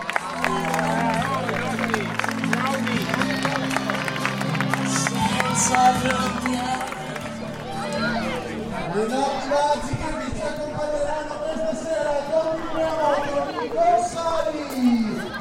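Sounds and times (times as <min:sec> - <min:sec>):
crowd applauding: 0:00.0 - 0:08.9
crowd chatter: 0:00.0 - 0:15.4.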